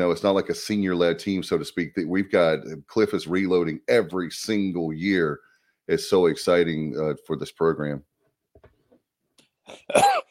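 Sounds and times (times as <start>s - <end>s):
speech: 0.0s - 8.1s, 9.7s - 10.2s
person coughing: 9.7s - 10.2s.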